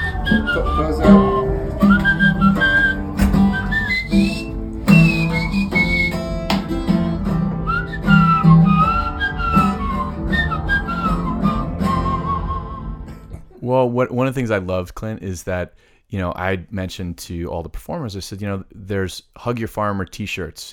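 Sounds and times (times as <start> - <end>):
man whistling through his teeth imitating a guitar solo: 0.0 - 13.4
speech: 0.3 - 1.2, 13.8 - 20.7.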